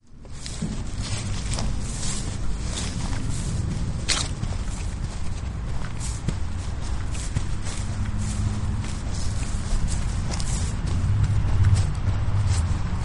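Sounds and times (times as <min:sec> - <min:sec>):
car traffic noise: 0:00.0 - 0:13.0
footsteps on grass: 0:00.0 - 0:13.0.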